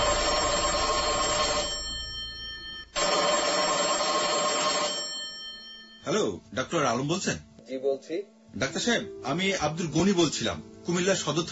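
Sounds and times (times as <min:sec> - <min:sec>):
telephone ringing on an outgoing call: 0:00.0 - 0:06.2
speech: 0:06.2 - 0:11.5.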